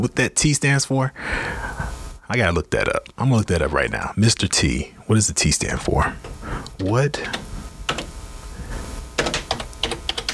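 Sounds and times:
speech: 0:00.0 - 0:01.7, 0:02.3 - 0:07.5
typing on a computer keyboard: 0:09.2 - 0:10.3.

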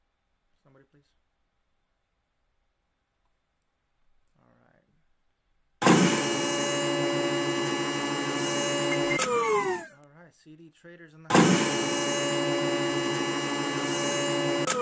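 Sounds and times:
speech: 0:00.8 - 0:01.4, 0:10.7 - 0:12.6
big office door grinding open with mechanical whir: 0:05.9 - 0:09.9, 0:11.4 - 0:14.7.

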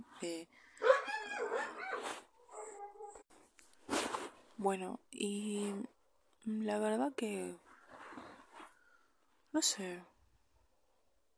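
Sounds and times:
speech: 0:00.2 - 0:00.7, 0:04.6 - 0:07.6, 0:09.5 - 0:10.1
dog whining and yelping in high wavering cries: 0:00.8 - 0:03.2.

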